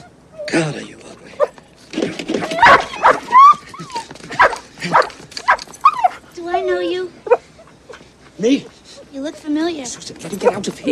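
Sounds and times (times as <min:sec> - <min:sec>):
dog whimpering and yelping: 0:00.0 - 0:00.6, 0:02.4 - 0:08.0, 0:10.3 - 0:10.7
speech: 0:00.5 - 0:01.0, 0:08.4 - 0:08.7, 0:09.9 - 0:10.9.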